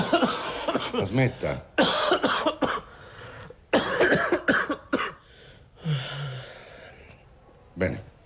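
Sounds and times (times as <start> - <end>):
harsh coughing: 0.0 - 5.3
speech: 0.9 - 2.6, 7.8 - 8.0.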